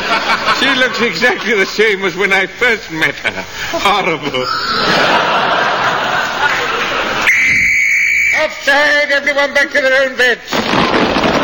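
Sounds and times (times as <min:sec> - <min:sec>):
laughter: 0:00.0 - 0:07.7
speech: 0:00.6 - 0:05.2, 0:08.4 - 0:11.2
shrill danger whistle warning of blasting: 0:04.4 - 0:05.2, 0:07.2 - 0:08.7.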